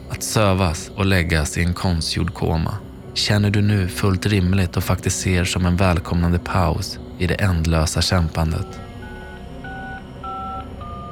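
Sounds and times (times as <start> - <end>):
speech: 0.2 - 8.8
telephone keypad dialing tones: 8.6 - 11.0.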